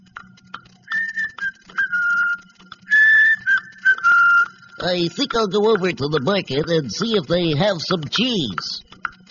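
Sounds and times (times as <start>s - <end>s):
person whistling a simple melody: 0.9s - 4.9s
speech: 4.8s - 8.8s.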